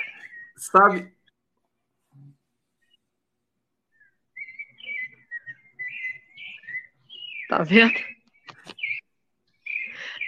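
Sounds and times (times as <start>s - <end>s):
several birds singing outdoors: 0.0s - 1.5s, 2.7s - 10.2s
speech: 0.6s - 1.2s, 7.5s - 8.1s.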